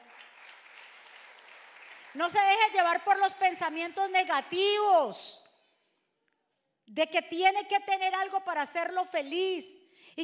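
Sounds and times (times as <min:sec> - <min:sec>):
crowd applauding: 0:00.0 - 0:02.6
speech: 0:02.2 - 0:05.4, 0:06.9 - 0:10.2.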